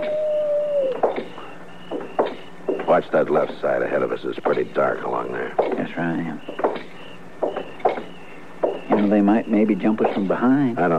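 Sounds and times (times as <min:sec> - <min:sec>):
coyote yipping: 0:00.0 - 0:03.2, 0:06.3 - 0:10.4
coyote howling: 0:00.0 - 0:03.4, 0:06.4 - 0:09.8
speech: 0:02.9 - 0:06.5, 0:09.0 - 0:10.9.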